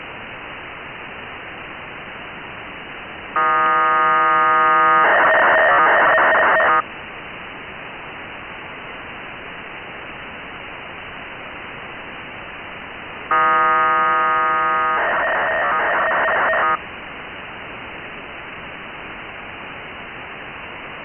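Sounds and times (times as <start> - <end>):
1k2 BPSK radio data signal on 145880: 3.4 - 6.8, 13.3 - 16.8.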